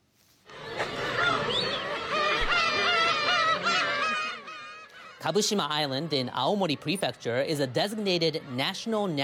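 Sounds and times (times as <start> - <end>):
laughter: 0.5 - 9.2
chorus of black-tailed gulls calling: 0.6 - 9.2
speech: 5.2 - 9.2.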